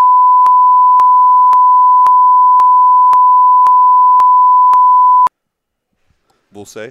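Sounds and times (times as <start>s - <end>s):
high-pitched censor bleep tone: 0.0s - 5.3s.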